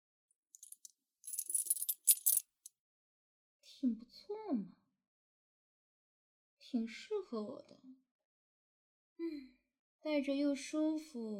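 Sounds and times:
metal handcuffs clinking and jangling: 0.6 - 2.7
speech: 3.8 - 4.8, 6.7 - 8.0, 9.2 - 11.3.

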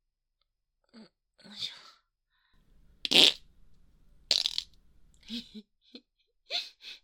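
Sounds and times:
spluttering farts, puffs and squeaks: 3.0 - 3.4, 4.3 - 4.8.

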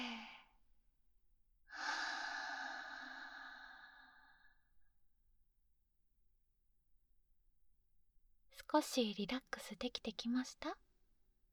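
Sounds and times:
slow long exhalation during a relaxation exercise: 1.7 - 4.6
speech: 8.7 - 10.8.

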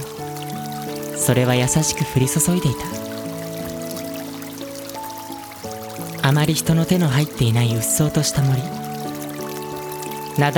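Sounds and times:
small stream flowing through a dense untouched forest on a gentle slope: 0.0 - 10.5
speech: 1.3 - 3.1, 6.3 - 9.0, 10.4 - 10.5.

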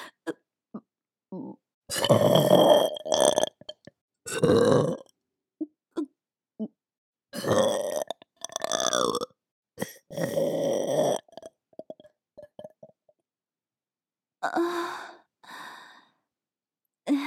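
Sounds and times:
loud burps: 1.9 - 5.1, 7.4 - 13.0.

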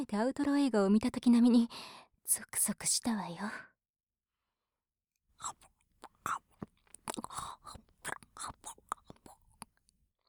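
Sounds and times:
speech: 0.0 - 3.7, 5.4 - 5.7
soft wet chewing of gummy candy: 5.4 - 9.8.

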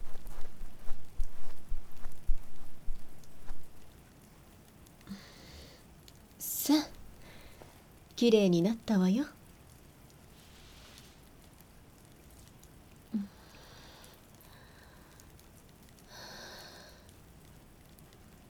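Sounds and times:
heavy rain heard from indoors: 3.9 - 8.2, 8.8 - 18.4
speech: 8.2 - 9.4.

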